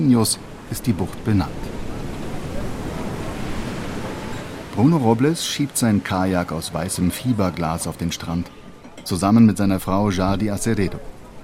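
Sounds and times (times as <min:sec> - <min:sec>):
speech: 0:00.0 - 0:01.8, 0:04.8 - 0:11.1
Atlantic surf washing onto a crescent-shaped golden beach in the Bahia dos Golfinhos: 0:00.0 - 0:11.4.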